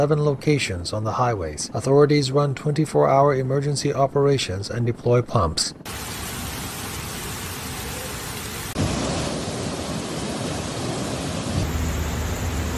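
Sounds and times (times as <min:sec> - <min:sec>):
speech: 0:00.0 - 0:06.2
torrential rain downpour: 0:05.9 - 0:12.7.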